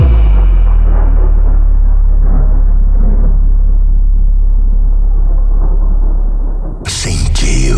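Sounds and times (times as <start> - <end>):
deep sub-bass rumble below 50 Hz: 0.0 - 6.9
dense low roar: 0.0 - 7.7.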